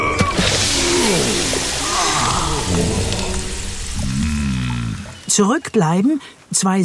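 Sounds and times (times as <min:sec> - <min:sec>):
quick footsteps splashing into water: 0:00.2 - 0:04.2
speech: 0:05.4 - 0:06.8.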